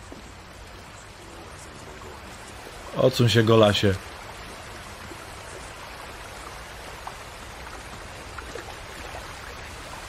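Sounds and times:
flowing water of a warm hot spring: 0.0 - 10.0
speech: 2.9 - 4.1.

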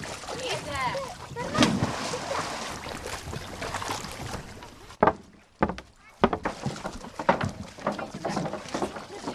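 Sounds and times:
water sloshing and splashing at a slipway: 0.0 - 9.3
people talking: 0.3 - 1.8, 8.0 - 9.3
knocks and thumps of small sailing boats and trolley: 5.0 - 9.3.

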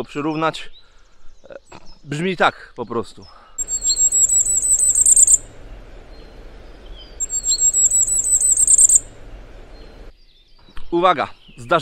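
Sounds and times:
speech: 0.0 - 0.8, 1.5 - 3.8, 10.9 - 11.8
firecrest song: 3.6 - 10.1
low noise: 3.6 - 10.1.

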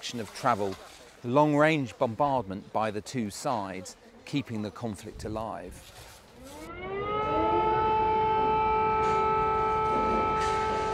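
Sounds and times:
faint noise: 0.0 - 6.8
speech: 0.1 - 6.6
air raid siren wailing: 6.4 - 10.9.

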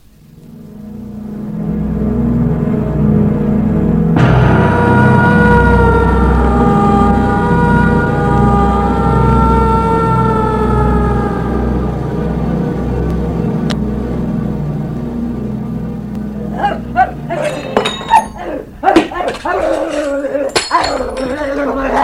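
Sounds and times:
low rumbling noise: 0.0 - 22.0
dog barking: 16.5 - 20.0.

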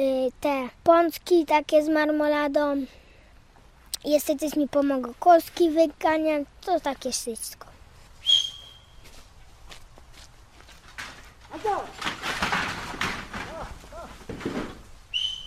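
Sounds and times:
speech: 0.0 - 3.0, 4.0 - 7.7, 11.6 - 12.1
shuffling and rustling noise: 3.5 - 15.4
person whistling a short steady high note: 8.2 - 9.0, 15.1 - 15.4.

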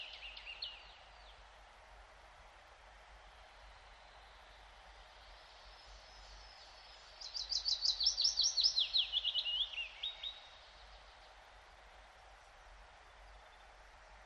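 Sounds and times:
willow warbler singing in pine forest: 5.7 - 11.0.

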